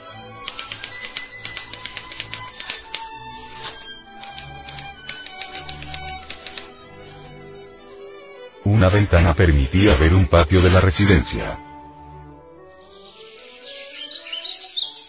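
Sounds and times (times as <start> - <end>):
typewriter keystrokes: 0.4 - 6.7
speech: 8.8 - 11.7.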